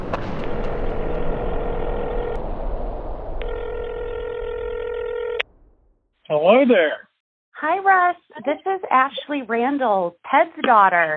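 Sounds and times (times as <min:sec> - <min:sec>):
steady low rumble: 0:00.0 - 0:06.0
long electronic phone ring tones: 0:00.9 - 0:02.4, 0:03.4 - 0:05.4
phone dialing beeps: 0:03.4 - 0:05.4
speech: 0:06.3 - 0:07.0, 0:07.6 - 0:11.1.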